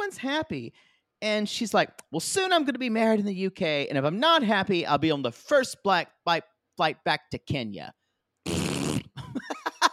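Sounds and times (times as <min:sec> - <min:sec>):
speech: 0:00.1 - 0:08.6
loud sputtering wet fart: 0:08.4 - 0:09.2
laughter: 0:09.2 - 0:09.9.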